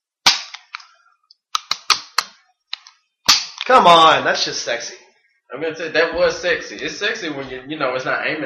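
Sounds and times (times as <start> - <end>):
Springfield 1911 pistol gunshots: 0.3 - 0.8, 3.3 - 3.6
speech: 3.7 - 8.4.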